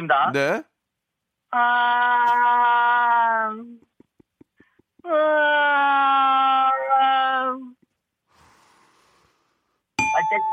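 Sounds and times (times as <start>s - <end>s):
speech: 0.0s - 0.7s, 1.5s - 3.8s
person imitating a female cat's mating yowl: 1.5s - 3.8s, 5.0s - 7.8s.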